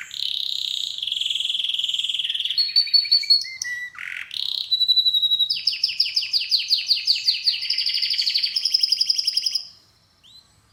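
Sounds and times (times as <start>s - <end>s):
canary singing a short fast trill: 0.0s - 10.4s.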